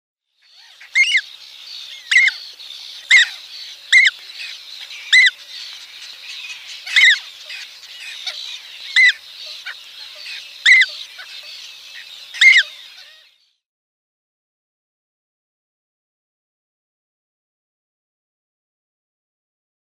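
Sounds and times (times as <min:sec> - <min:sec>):
downy young black-headed gull: 0:00.5 - 0:13.3.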